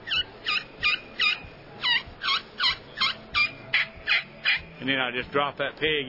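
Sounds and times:
kee-kee turkey call on a glass pot call: 0:00.0 - 0:04.7
speech: 0:04.8 - 0:06.0.

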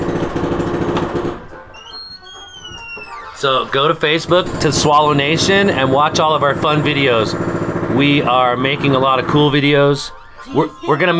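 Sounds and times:
jackhammer pounding: 0:00.0 - 0:01.5, 0:04.1 - 0:10.1
faint high chirping: 0:01.7 - 0:03.6
speech: 0:03.4 - 0:11.1.

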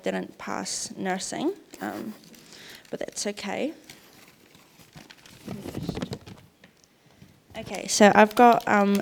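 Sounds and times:
speech: 0:00.0 - 0:04.0, 0:07.6 - 0:08.9
sheet of paper with notes being folded and crinkled: 0:01.9 - 0:06.6, 0:07.6 - 0:08.9.

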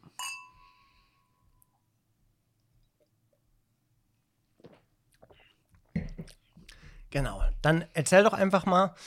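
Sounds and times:
glasses clinking in a toast: 0:00.0 - 0:00.9
speech: 0:07.1 - 0:09.0.

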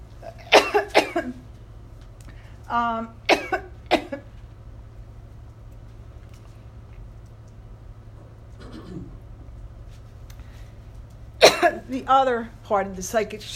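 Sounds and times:
steady low hum: 0:00.0 - 0:13.5
person coughing: 0:00.2 - 0:01.4, 0:03.3 - 0:04.3, 0:08.6 - 0:09.2, 0:11.4 - 0:11.9
speech: 0:01.2 - 0:01.4, 0:02.7 - 0:03.3, 0:11.9 - 0:13.5.

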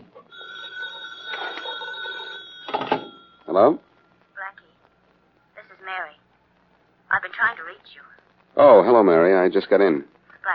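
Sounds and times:
telephone bell ringing with shrill metallic trill: 0:00.3 - 0:03.5
speech: 0:03.5 - 0:03.9, 0:07.6 - 0:10.5.

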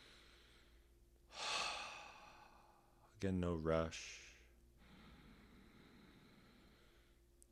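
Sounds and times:
deep breath during a breathwork exercise: 0:00.0 - 0:03.0, 0:04.8 - 0:07.2
speech: 0:03.2 - 0:04.2.

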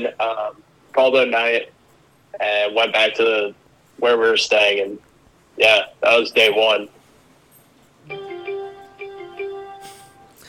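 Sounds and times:
speech: 0:00.0 - 0:01.8, 0:02.4 - 0:07.0
phone app notification jingle for a sports news update: 0:08.1 - 0:10.4.

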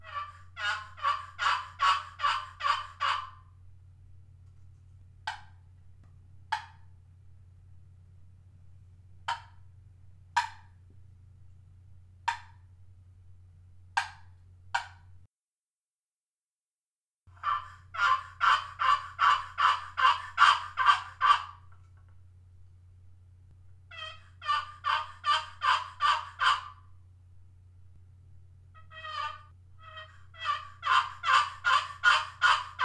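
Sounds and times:
hen turkey yelps from an ambrosia maple and Patagonia rosewood friction call: 0:00.0 - 0:03.5, 0:05.3 - 0:05.6, 0:09.3 - 0:09.7, 0:17.4 - 0:22.2, 0:23.7 - 0:27.2, 0:28.6 - 0:32.8.

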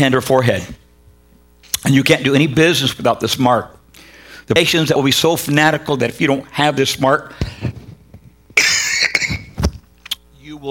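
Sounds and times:
speech: 0:00.0 - 0:00.8, 0:01.8 - 0:03.8, 0:04.5 - 0:07.8
harsh coughing: 0:08.6 - 0:09.6.

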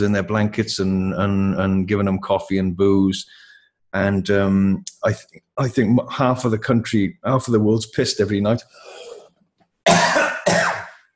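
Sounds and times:
speech: 0:00.0 - 0:09.0
faint breath: 0:03.3 - 0:03.8, 0:08.7 - 0:09.3
person coughing: 0:09.9 - 0:11.1.

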